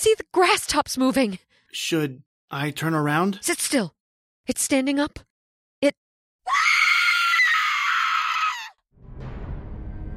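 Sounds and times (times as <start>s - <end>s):
speech: 0.0s - 6.6s
woman screaming in terror: 6.5s - 8.8s.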